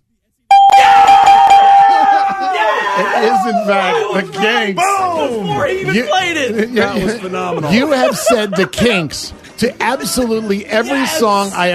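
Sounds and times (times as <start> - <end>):
busy wash of noise: 0.0 - 11.7
bell ringing for a correct answer: 0.5 - 2.4
laughter: 1.7 - 11.3
speech: 3.2 - 11.7.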